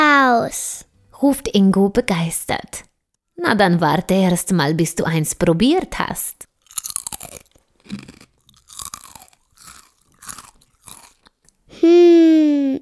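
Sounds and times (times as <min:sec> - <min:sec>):
speech: 0:01.2 - 0:06.4, 0:07.2 - 0:08.2, 0:11.8 - 0:12.8
chocolate popcorn being chewed with loud crunching: 0:06.4 - 0:11.6
person humming a sustained note falling in pitch: 0:11.7 - 0:12.8.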